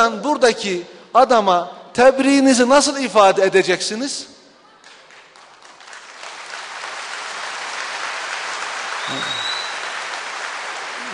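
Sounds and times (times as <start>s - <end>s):
speech: 0.0s - 4.4s
audience applause: 4.9s - 11.1s
whistle: 9.0s - 9.9s.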